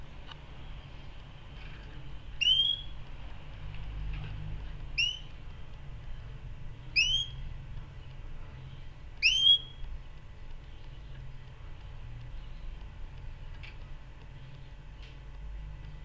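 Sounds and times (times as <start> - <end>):
low steady hum: 0.0 - 16.0
canary calls: 2.4 - 2.9, 5.0 - 5.3, 6.9 - 7.4, 9.2 - 9.8.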